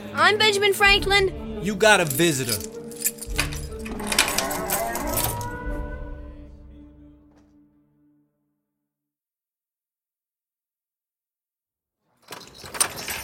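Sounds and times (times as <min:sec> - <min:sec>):
speech: 0:00.2 - 0:02.8
metallic clattering: 0:02.0 - 0:05.6, 0:12.2 - 0:13.2
heavy iron door in a jail grinding and clanging shut: 0:03.2 - 0:05.7.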